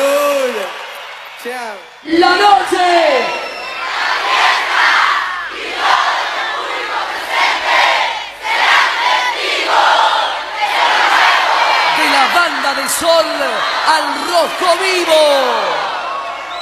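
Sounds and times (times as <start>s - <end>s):
crowd shouts: 0.0s - 3.9s, 11.1s - 16.5s
large crowd cheering and applause: 0.0s - 16.5s
speech: 1.4s - 3.4s, 13.0s - 15.8s.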